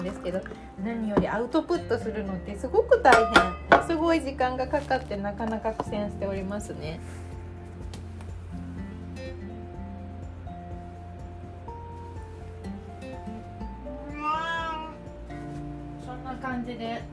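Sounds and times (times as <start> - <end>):
speech: 0.2 - 7.3, 16.7 - 17.1
cat meowing: 13.8 - 15.2.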